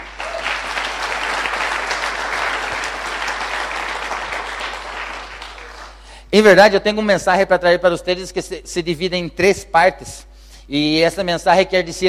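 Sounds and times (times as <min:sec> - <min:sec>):
large crowd applauding loudly: 0:00.0 - 0:06.2
speech: 0:06.3 - 0:12.0.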